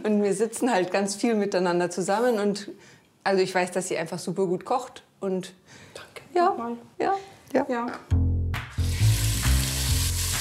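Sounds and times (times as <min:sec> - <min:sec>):
speech: 0:00.0 - 0:08.2
finely diced lamb hearts frying in clarified butter: 0:08.8 - 0:10.3.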